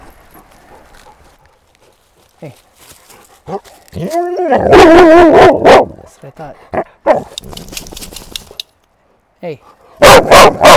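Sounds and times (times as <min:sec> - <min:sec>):
speech: 0:02.4 - 0:08.2, 0:09.4 - 0:10.7
dog barking on a hike to a waterfall: 0:04.6 - 0:05.9, 0:10.0 - 0:10.7.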